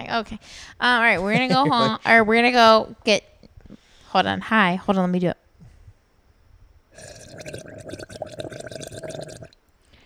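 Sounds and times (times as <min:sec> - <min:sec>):
speech: 0:00.1 - 0:03.3, 0:04.1 - 0:05.4
laughter: 0:01.2 - 0:02.2
rapid bubbling of water through a bong: 0:06.9 - 0:09.7.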